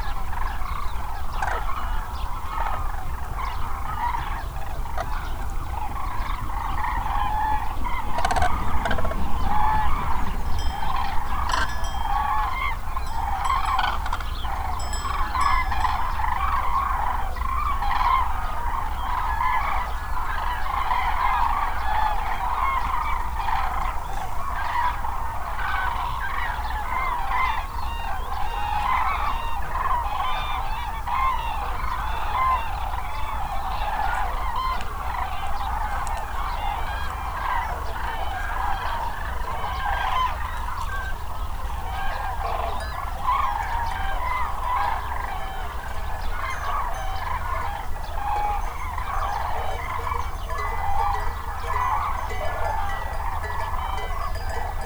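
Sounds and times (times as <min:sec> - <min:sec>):
cranes calling on the Hortobágy: 0:00.0 - 0:54.8
herd bells clanking on the Hortobágy: 0:09.4 - 0:17.5, 0:48.3 - 0:54.8.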